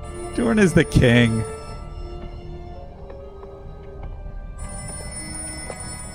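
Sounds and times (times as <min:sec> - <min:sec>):
telephone bell ringing: 0:00.0 - 0:02.2, 0:04.6 - 0:06.1
speech: 0:00.4 - 0:01.6.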